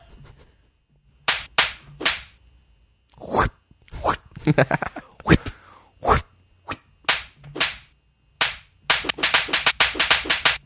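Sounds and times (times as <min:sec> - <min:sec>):
whip cracking: 0:01.3 - 0:02.4, 0:07.1 - 0:10.6
speech: 0:04.5 - 0:04.9.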